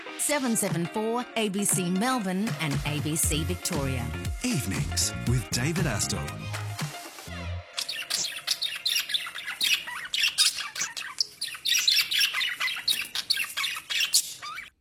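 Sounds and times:
speech: 0.3 - 6.7
parrots squawking: 7.8 - 14.7.

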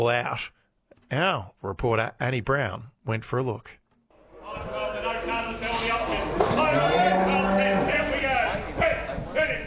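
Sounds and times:
speech: 0.0 - 3.8
indistinct voices at sale yards: 4.2 - 9.6
cattle mooing in sale yard pens: 6.2 - 8.2.

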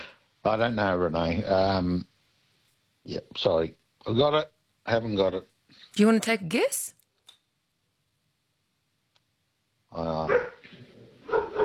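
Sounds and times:
speech: 0.4 - 2.1, 3.0 - 7.0, 9.9 - 10.5
dog whining yelp: 10.3 - 10.6, 11.2 - 11.6
dog barking: 10.3 - 11.6.

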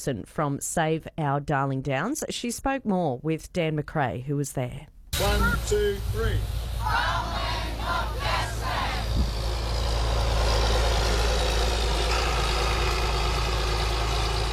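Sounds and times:
speech: 0.0 - 8.1
crowd shouting and cheering: 5.2 - 9.2
heavy farm tractor engines idling at rally: 5.2 - 14.5.

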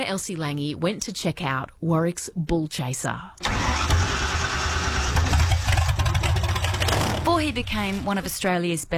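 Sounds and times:
speech: 0.0 - 4.0, 7.4 - 8.9
car engine idling at a car and motorbike festival: 3.4 - 7.3.

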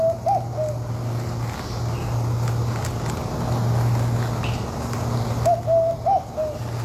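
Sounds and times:
Bar-shouldered Dove giving short hollow coos: 0.0 - 0.9, 5.4 - 6.8
steady low hum: 0.0 - 6.8.

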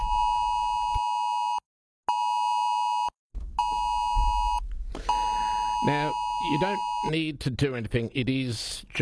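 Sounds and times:
phone emergency alert tone: 0.0 - 7.1
speech: 5.8 - 9.0.

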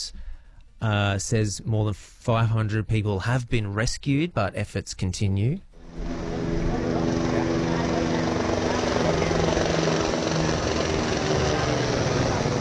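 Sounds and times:
speech: 0.8 - 6.2
helicopter flying overhead with engine and rotor roar: 5.8 - 12.5.

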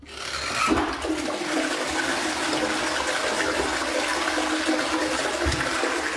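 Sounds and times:
toilet flushing: 0.0 - 6.1.

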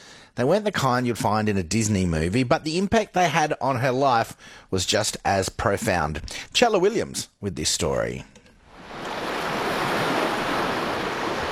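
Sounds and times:
speech: 0.4 - 8.4
wind: 8.4 - 11.5
ocean surf breaking on the shore off the coast of Narrabup in southwest Western Australia: 8.7 - 11.5.

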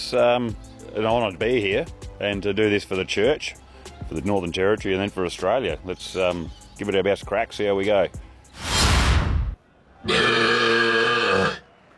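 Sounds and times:
speech: 0.1 - 8.7, 10.0 - 10.5
loud belch in a belching competition: 10.1 - 11.6.

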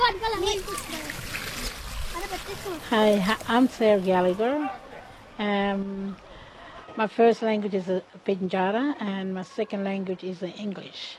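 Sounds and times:
children chattering: 0.0 - 7.2, 8.9 - 10.5
liquid splashing and gurgling poured into a planting hole: 0.3 - 3.8
speech: 2.6 - 4.8, 5.4 - 6.3, 7.0 - 11.1.

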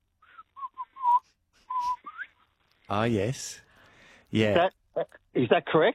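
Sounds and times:
person whistling imitation of grey butcherbird call: 0.2 - 2.3
speech: 2.9 - 3.6, 4.3 - 5.9.

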